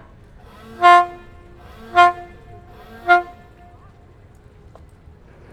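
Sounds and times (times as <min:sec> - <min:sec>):
departing ferry horn: 0:00.4 - 0:04.8.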